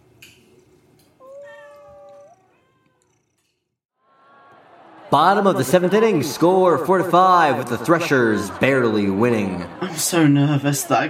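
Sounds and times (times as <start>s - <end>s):
cat meowing in a cat cafe: 1.2s - 3.4s
laughter: 4.1s - 11.0s
speech: 5.1s - 11.0s.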